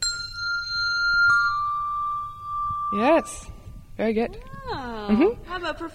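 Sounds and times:
handbell ringing with a bright sustained tone: 0.0s - 3.6s
speech: 2.9s - 5.9s.

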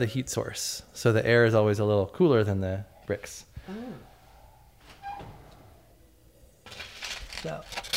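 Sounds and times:
speech: 0.0s - 4.1s, 7.4s - 7.9s
oven door closing with a soft clunk: 4.9s - 5.8s.

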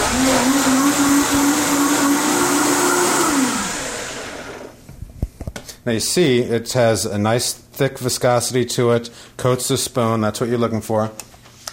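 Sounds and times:
blender running: 0.0s - 4.8s
speech: 5.8s - 11.3s.

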